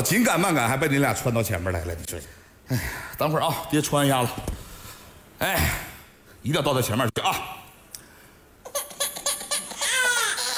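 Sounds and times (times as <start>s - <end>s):
speech: 0.0s - 4.6s, 5.4s - 7.6s
baby crying: 8.6s - 10.5s.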